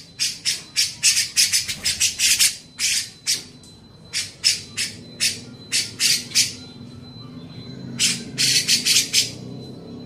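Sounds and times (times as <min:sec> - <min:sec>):
Grey-cheeked bulbul harsh squawking calls: 0:00.2 - 0:03.5, 0:04.1 - 0:06.6, 0:08.0 - 0:09.4.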